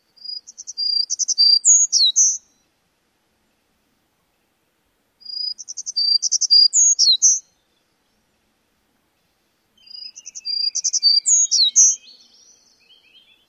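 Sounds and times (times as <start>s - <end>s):
Townsend's warbler singing: 0.0s - 2.8s, 5.2s - 8.4s, 9.1s - 13.4s.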